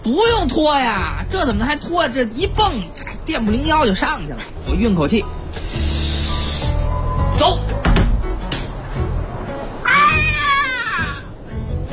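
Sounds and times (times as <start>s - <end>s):
speech: 0.0s - 5.6s, 7.4s - 7.8s
steady noise: 0.0s - 11.9s
stray cat meowing after being hit: 9.8s - 11.3s.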